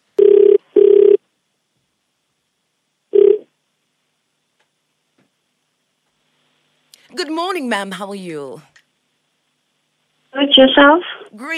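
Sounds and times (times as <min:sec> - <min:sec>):
telephone ringing tone over the line: 0:00.2 - 0:01.2, 0:03.2 - 0:03.5
speech: 0:07.1 - 0:08.7, 0:10.6 - 0:11.5.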